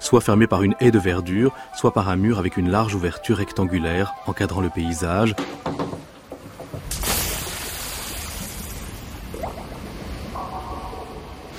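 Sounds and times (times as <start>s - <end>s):
speech: 0.1s - 5.9s
water splashing and lapping in a swimming pool: 6.0s - 11.5s
faint tonal sounds: 9.5s - 11.5s.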